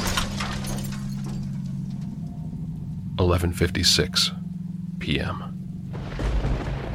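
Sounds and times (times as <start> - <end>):
glass shattering: 0.0 - 2.1
steady low droning hum: 0.0 - 6.9
speech: 3.2 - 4.4, 5.0 - 5.5.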